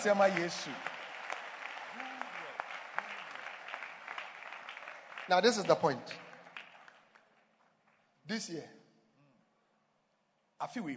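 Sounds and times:
speech: 0.0s - 0.9s, 5.3s - 6.2s, 8.3s - 8.8s, 10.6s - 10.9s
congregation clapping and cheering: 0.0s - 8.2s.

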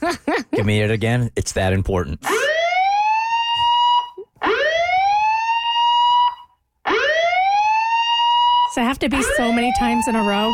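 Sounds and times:
speech: 0.0s - 2.5s, 8.8s - 10.5s
police siren wailing in rising sweeps: 2.3s - 10.5s.

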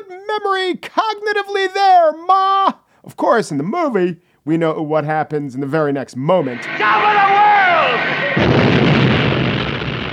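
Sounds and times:
speech: 0.0s - 7.4s
huge explosion in a movie: 6.6s - 10.1s.

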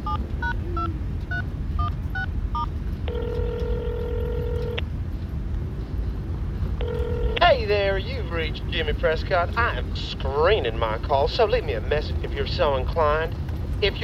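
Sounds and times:
steady telephone tone: 0.0s - 4.8s, 6.8s - 7.4s
low rumble: 0.0s - 14.0s
touch-tone telephone dialing: 1.3s - 4.8s, 6.8s - 7.4s
speech: 8.4s - 14.0s.

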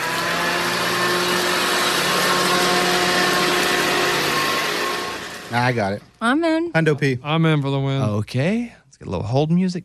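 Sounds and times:
paper shredder motor running: 0.0s - 6.0s
speech: 5.6s - 9.8s.

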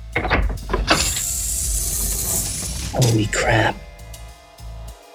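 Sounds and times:
door pushed open by hand creaking: 0.2s - 3.8s
steady airy hiss from the space beyond: 1.0s - 4.8s
speech: 3.0s - 3.8s.

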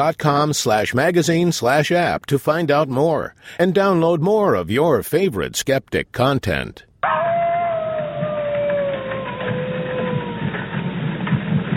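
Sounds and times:
speech: 0.0s - 7.2s
wolf howling: 7.0s - 11.0s.

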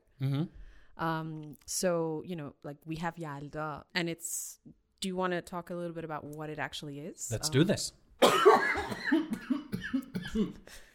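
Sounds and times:
speech: 0.2s - 10.9s
person coughing: 8.2s - 10.7s.

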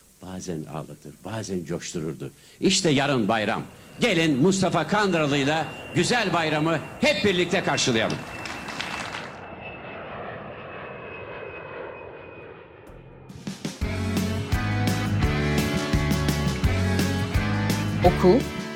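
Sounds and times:
speech: 0.2s - 8.4s, 18.2s - 18.6s
airplane engine roar with a high whine at an airport: 3.0s - 18.7s
rhythmic music: 13.4s - 18.7s.

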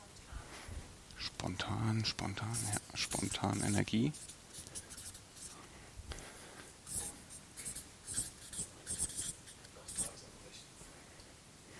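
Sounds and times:
speech: 1.4s - 4.4s
pen scratching across paper while writing a word by hand: 2.0s - 5.6s, 6.9s - 10.2s.

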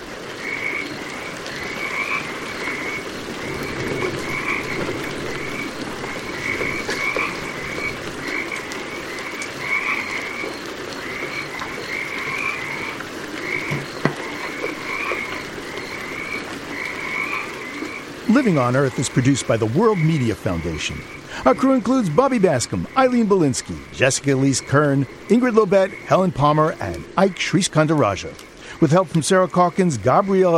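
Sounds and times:
Pacific chorus frogs croaking in pulsing trills: 0.0s - 30.5s
constant hiss of winter rain: 0.0s - 30.5s
speech: 18.4s - 30.5s.

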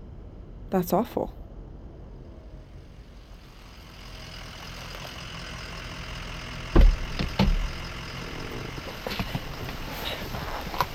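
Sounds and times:
truck engine running during a ride: 0.0s - 10.9s
speech: 0.7s - 1.4s
heavy thumps: 6.8s - 9.9s.

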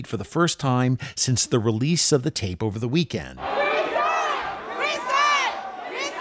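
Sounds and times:
speech: 0.0s - 3.7s
packed indoor crowd of protesters shouting angrily in city council chamber: 3.4s - 6.2s.

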